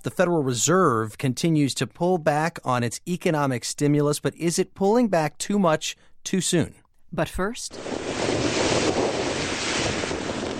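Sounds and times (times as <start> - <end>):
speech: 0.0 - 8.2
churning water during widespread flooding in Pensacola, Florida: 7.7 - 10.5
gusting wind during widespread flooding in Pensacola, Florida: 7.7 - 10.5.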